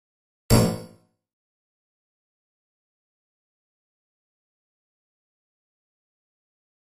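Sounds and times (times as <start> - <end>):
metallic bounce: 0.5 - 0.9.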